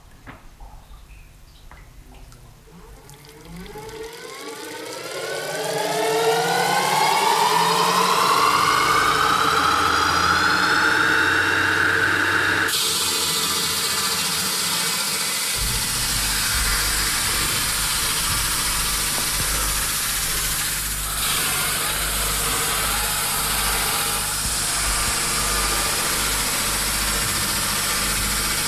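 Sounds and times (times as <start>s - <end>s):
motorized saw starting up and cutting hard material: 3.3s - 28.6s.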